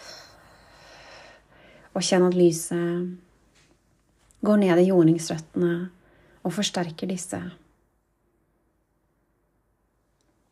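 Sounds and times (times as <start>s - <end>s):
slow exhale during guided breathing exercise: 0.0s - 1.9s
speech: 2.0s - 3.3s, 4.4s - 7.6s.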